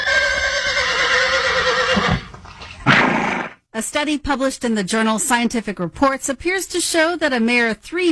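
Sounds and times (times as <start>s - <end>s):
horse whinnying: 0.0s - 3.6s
speech: 3.8s - 8.0s.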